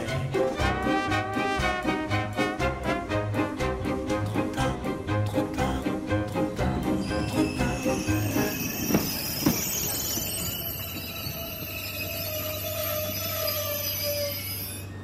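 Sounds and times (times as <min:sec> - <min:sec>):
train rolling slowly over a heritage-listed viaduct on worn tracks: 0:00.0 - 0:15.0
thin metallic train wheel squeals: 0:06.8 - 0:15.0.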